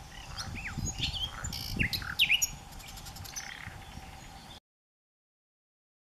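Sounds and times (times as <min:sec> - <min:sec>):
common nightingale song: 0:00.0 - 0:04.6.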